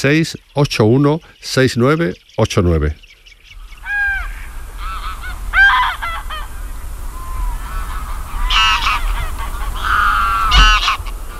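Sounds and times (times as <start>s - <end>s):
speech: 0.0s - 3.0s
greylag geese honking: 3.6s - 11.3s.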